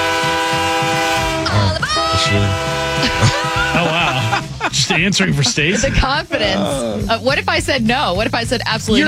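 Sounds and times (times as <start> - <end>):
loud sustained train horn blaring: 0.0 - 4.6
speech: 2.3 - 9.0
laughter: 2.9 - 7.1.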